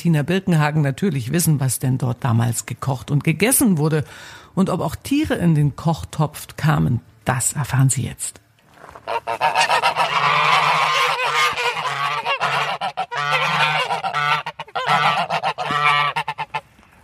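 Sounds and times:
speech: 0.0 - 8.4, 9.1 - 10.7
flock of geese honking: 8.9 - 16.7.

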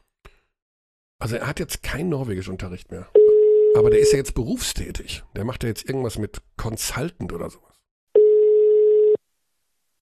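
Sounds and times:
speech: 1.2 - 7.7
telephone ring tone as a call goes through: 3.2 - 4.2, 8.2 - 9.2.

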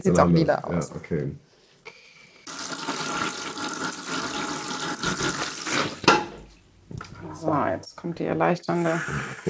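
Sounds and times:
speech: 0.0 - 1.5, 7.4 - 9.4
tap water running into a basin while rinsing hair: 2.5 - 6.1.

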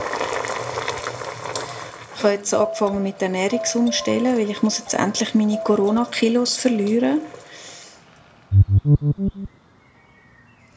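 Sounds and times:
pot simmering and bubbling on a stove: 0.0 - 2.3
speech: 2.2 - 7.4, 8.9 - 9.6.

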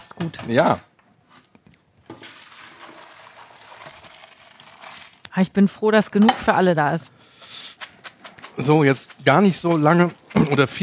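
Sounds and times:
speech: 0.2 - 0.9, 5.4 - 7.2, 8.6 - 10.8
water gushing from a pot into a colander as cooked pasta is drained: 2.1 - 5.3.

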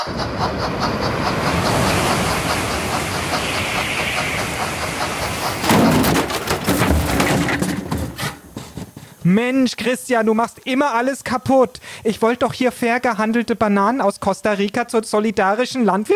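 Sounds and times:
Transrapid maglev train passing on track 3: 0.0 - 9.2
speech: 0.1 - 1.4, 9.3 - 16.1.

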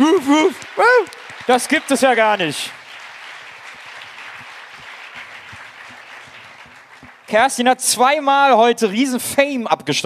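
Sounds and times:
speech: 0.0 - 2.8, 7.3 - 10.0
audience applauding at a prize-giving: 0.0 - 7.7.

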